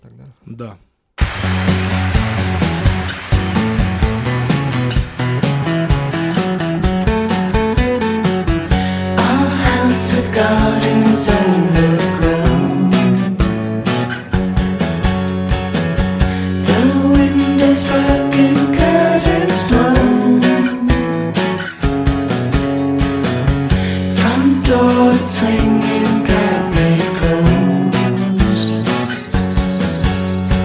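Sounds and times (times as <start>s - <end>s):
speech: 0.5s - 1.9s, 9.9s - 12.0s
full dense song with driving beat and layered instruments: 1.2s - 30.6s
female guest vocalist singing hazy smoky mysterious line: 9.2s - 13.4s, 16.6s - 21.2s, 24.1s - 28.9s.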